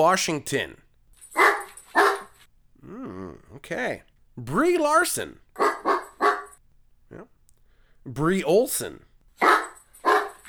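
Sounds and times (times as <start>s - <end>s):
speech: 0.0s - 0.8s, 3.6s - 5.7s, 8.0s - 9.6s
dog barking: 1.4s - 2.4s, 5.6s - 6.6s, 9.4s - 10.4s.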